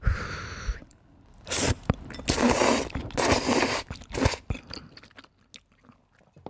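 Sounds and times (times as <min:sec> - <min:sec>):
person chewing and crunching buttered pasta with salted fermented squid: 0:01.5 - 0:06.4.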